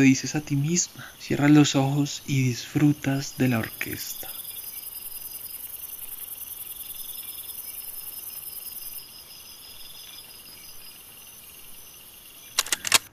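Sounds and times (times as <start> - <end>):
speech: 0.0 - 4.4
cicadas in a night chorus: 0.0 - 12.6
crickets in a night chorus: 0.0 - 13.1
frogs in a night chorus: 0.0 - 13.1
sharp metallic clicks: 12.6 - 13.1.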